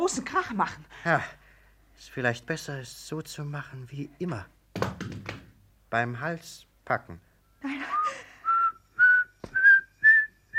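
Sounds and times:
speech: 0:00.0 - 0:01.4, 0:02.0 - 0:05.2, 0:05.9 - 0:08.2
person whistling short high notes: 0:07.8 - 0:10.5.

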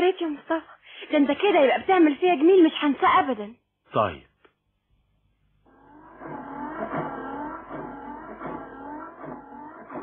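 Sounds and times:
speech: 0:00.0 - 0:04.3
car engine revving after a repair: 0:05.7 - 0:10.0.

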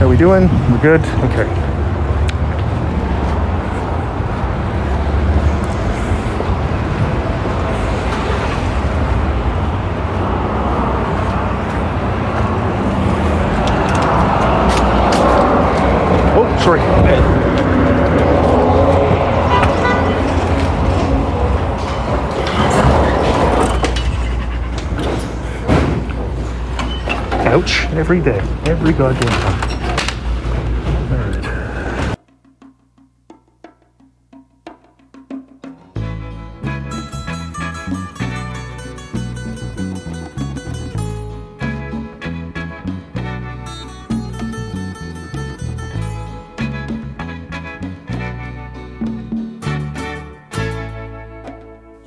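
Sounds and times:
speech: 0:00.0 - 0:01.8, 0:16.7 - 0:17.1, 0:27.6 - 0:29.8
busy road traffic with passing pickup trucks: 0:00.0 - 0:32.2, 0:35.9 - 0:52.0
thump: 0:25.7 - 0:26.1.

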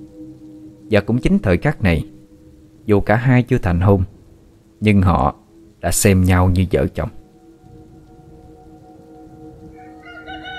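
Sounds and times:
low rumbling background: 0:00.0 - 0:09.8
speech: 0:00.9 - 0:02.1, 0:02.9 - 0:04.2, 0:04.8 - 0:07.2
rooster crowing at dawn: 0:09.7 - 0:10.5.

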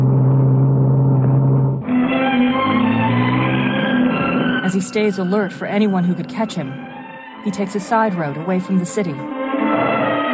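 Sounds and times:
car engine droning while being driven: 0:00.0 - 0:06.4
speech: 0:04.7 - 0:09.4.

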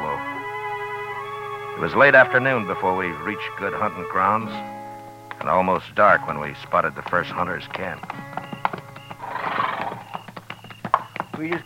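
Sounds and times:
speech: 0:01.8 - 0:04.8, 0:05.4 - 0:08.4, 0:11.4 - 0:11.6
horse hooves clip-clopping: 0:06.6 - 0:11.6
horse whinnying at a hunter's camp: 0:07.3 - 0:11.6.

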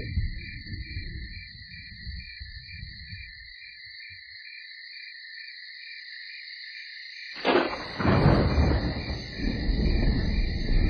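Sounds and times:
deep rumbling from a thunderstorm: 0:00.0 - 0:03.5, 0:07.4 - 0:10.8
crickets chirping at night: 0:00.0 - 0:10.8.

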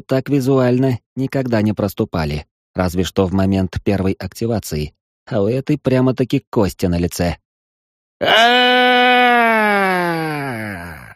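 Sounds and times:
speech: 0:00.0 - 0:07.4, 0:08.2 - 0:08.9
old man in a cave crying out in pain: 0:08.2 - 0:11.1.

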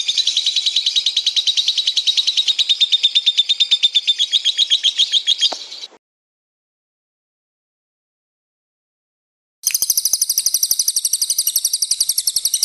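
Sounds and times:
lovebird chirping: 0:00.0 - 0:06.0, 0:09.6 - 0:12.6.

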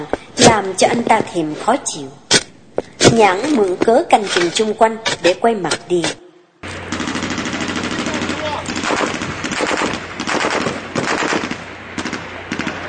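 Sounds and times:
speech: 0:00.0 - 0:02.2, 0:03.1 - 0:06.2
gunshots in rapid automatic bursts: 0:06.9 - 0:12.8.

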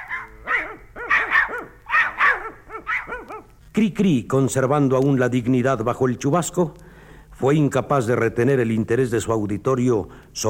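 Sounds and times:
dogs barking: 0:00.0 - 0:03.6
speech: 0:03.8 - 0:06.8, 0:07.4 - 0:10.4.

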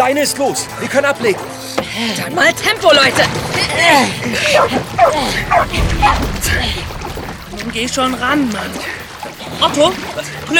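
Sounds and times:
speech: 0:00.0 - 0:10.5
dog yipping, whimpering and barking: 0:04.4 - 0:05.8.

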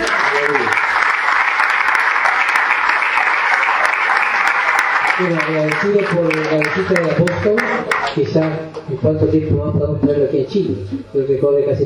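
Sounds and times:
congregation applauding at a church service in Chile: 0:00.0 - 0:08.6
speech: 0:05.2 - 0:11.8.

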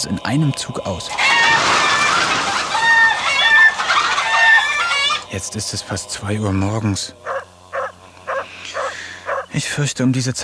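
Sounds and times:
speech: 0:00.0 - 0:01.6, 0:05.3 - 0:07.3, 0:09.5 - 0:10.4
rooster crowing and clucking as it is carried to the henhouse: 0:01.1 - 0:05.3, 0:07.2 - 0:09.5.

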